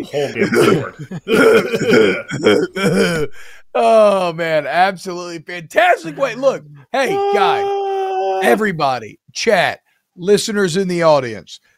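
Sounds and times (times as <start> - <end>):
speech: 0.0 - 11.7
person coughing harshly with strained vocal noise: 0.2 - 3.4.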